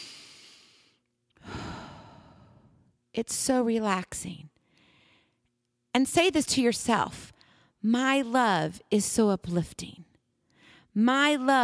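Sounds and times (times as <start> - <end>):
deep breath in and out with a long sigh: 0.0 - 2.9, 4.6 - 5.4, 10.5 - 11.0
speech: 3.2 - 4.5, 6.0 - 10.1, 10.9 - 11.6.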